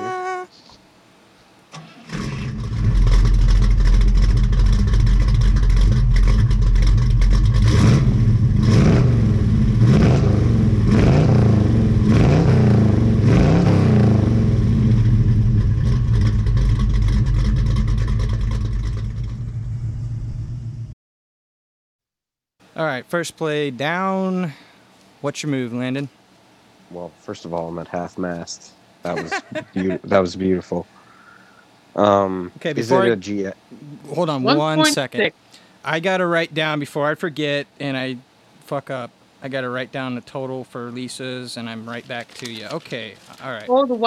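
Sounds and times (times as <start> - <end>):
car engine starting, revving and idling: 1.8 - 20.2
speech: 23.0 - 24.6, 25.2 - 26.2, 26.9 - 31.0, 32.0 - 44.0
laughter: 29.1 - 30.3.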